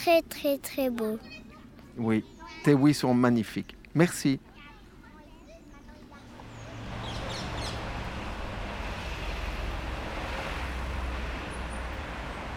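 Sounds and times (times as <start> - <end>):
speech: 0.0 - 1.4, 2.0 - 4.5
road traffic cars rumbling past beside a park: 6.3 - 12.5.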